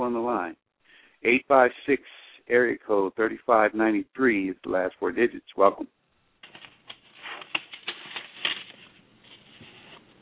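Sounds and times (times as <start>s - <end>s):
speech: 1.2s - 6.0s
papers being shuffled over a phone line: 6.4s - 10.1s.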